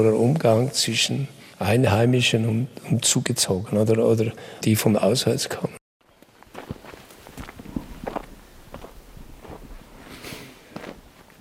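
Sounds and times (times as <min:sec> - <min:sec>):
speech: 0:00.0 - 0:05.8
footsteps on a walk through a village: 0:06.2 - 0:11.3.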